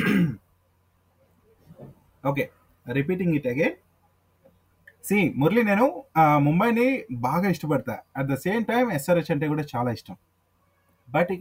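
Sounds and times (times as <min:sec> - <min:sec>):
sharp throat-clearing cough: 0:00.0 - 0:00.4
speech: 0:02.2 - 0:03.8, 0:05.0 - 0:10.3, 0:11.1 - 0:11.3.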